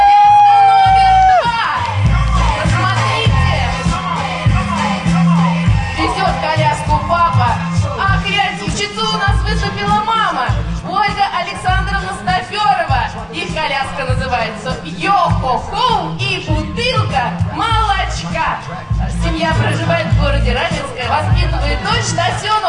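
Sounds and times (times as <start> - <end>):
crowd shouts and whoops: 0.0 - 2.4
audience applause and cheering at a baby stroller contest: 0.0 - 5.9
low rumbling backdrop: 0.0 - 11.0, 11.6 - 22.5.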